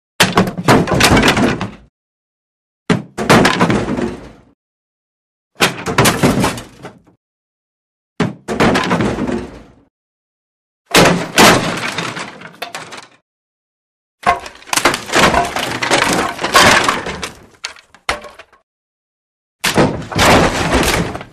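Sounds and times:
heavy lumber falling and tumbling on ground: 0.2s - 1.9s, 2.9s - 4.5s, 5.6s - 7.2s, 8.2s - 9.8s, 10.9s - 13.2s, 14.2s - 18.6s, 19.6s - 21.3s.

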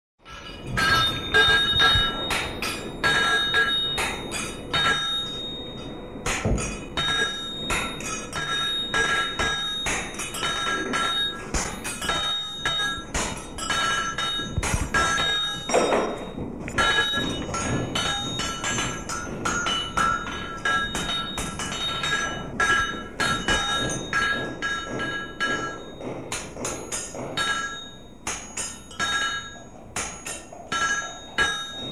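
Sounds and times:
blacksmith's shop: 0.2s - 31.9s.

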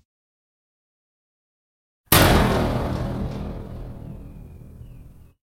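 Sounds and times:
metal buzz: 2.1s - 5.3s
metal clank: 2.1s - 5.3s.

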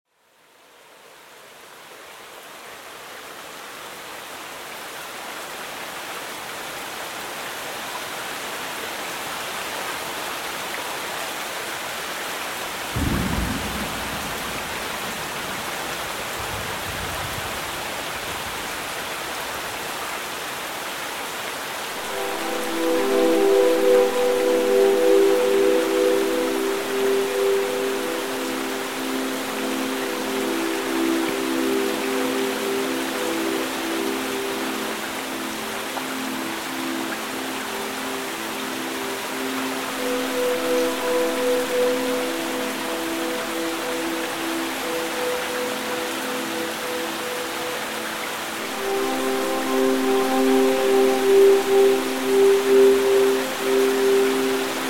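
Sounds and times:
rain: 0.1s - 54.8s
thunder: 12.9s - 17.7s.

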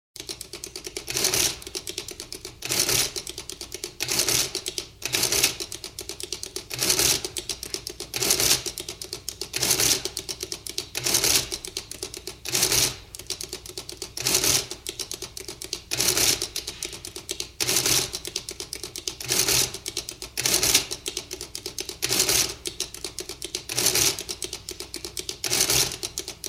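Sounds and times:
manual adding machine: 0.2s - 26.4s.

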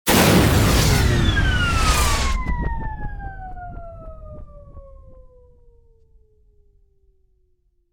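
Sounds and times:
DJ launch and fizzle sound effect: 0.1s - 2.9s.

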